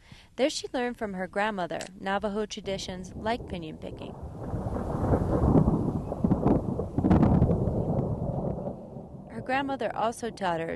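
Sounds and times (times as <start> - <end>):
speech: 0.4 - 4.4, 9.5 - 10.7
wind hiss: 2.9 - 9.7
deep rolling thunder from an approaching storm: 3.1 - 10.7.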